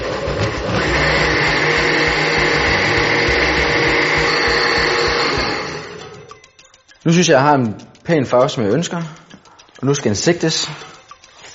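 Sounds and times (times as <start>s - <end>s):
kitchen blender whirring while blending a liquid set with agar: 0.0s - 6.3s
speech: 7.1s - 9.2s, 9.8s - 10.9s.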